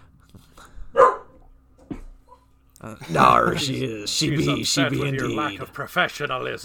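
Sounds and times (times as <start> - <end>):
dog yipping: 1.0 - 1.3
dog barking: 1.0 - 1.4
speech: 2.8 - 6.6.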